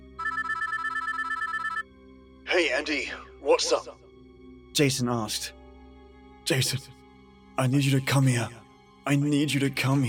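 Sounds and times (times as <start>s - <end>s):
ringing tone of an outgoing phone call: 0.1s - 1.9s
speech: 2.5s - 4.0s, 4.8s - 5.6s, 6.5s - 7.0s, 7.6s - 10.0s.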